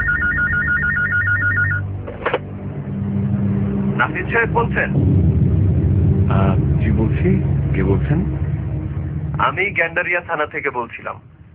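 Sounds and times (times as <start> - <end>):
telephone ringtone as a warbling electronic trill: 0.0 - 1.9
low constant hum: 0.0 - 11.5
speech: 4.0 - 5.4, 6.3 - 8.4, 9.4 - 11.3.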